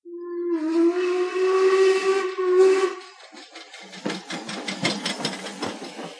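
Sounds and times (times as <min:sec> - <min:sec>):
steam train whistle: 0:00.1 - 0:03.3
steam train chuffing arriving at a station: 0:00.9 - 0:06.1.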